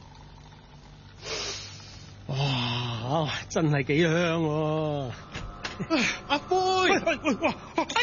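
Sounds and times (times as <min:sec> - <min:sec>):
hot coffee being brewed and poured, hissing and splashing: 0:00.0 - 0:02.2
low hum: 0:00.0 - 0:08.0
speech: 0:03.1 - 0:08.0.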